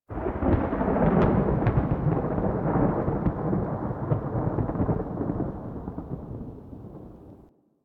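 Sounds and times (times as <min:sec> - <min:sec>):
low thunder crack: 0:00.1 - 0:07.5.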